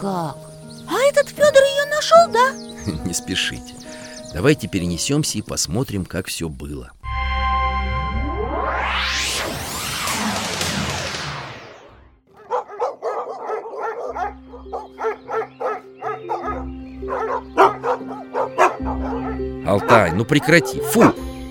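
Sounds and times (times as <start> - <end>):
speech: 0.0 - 0.5, 1.1 - 7.0, 19.8 - 21.2
steady low hum: 7.4 - 12.0
rising whoosh: 7.4 - 12.2
pack of hunting dogs barking: 12.3 - 21.2.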